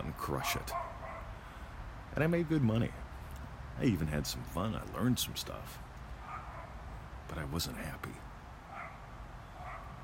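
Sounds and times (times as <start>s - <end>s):
dog yipping barks: 0.2s - 1.4s, 6.2s - 6.9s, 8.6s - 10.0s
speech: 0.3s - 1.0s, 2.1s - 3.1s, 3.8s - 5.8s, 7.3s - 8.3s.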